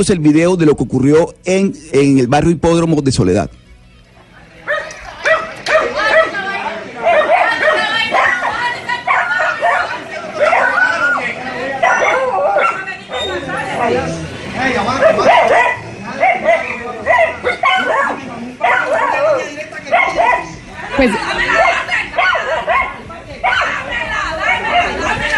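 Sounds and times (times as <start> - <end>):
speech: 0.0 - 3.6, 21.0 - 21.4
crowd of residents shouting at electricity workers cutting power to a house: 3.5 - 25.3
small dog barking furiously: 4.7 - 6.4, 7.0 - 11.0, 11.8 - 13.3, 15.0 - 20.6, 21.5 - 23.8, 24.4 - 25.0.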